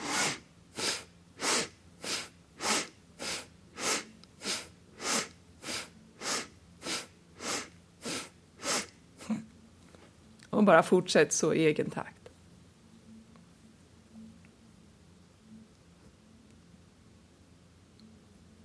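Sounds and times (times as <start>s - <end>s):
quick forceful breathing exercise through the nose: 0.0s - 8.9s
speech: 10.6s - 12.2s.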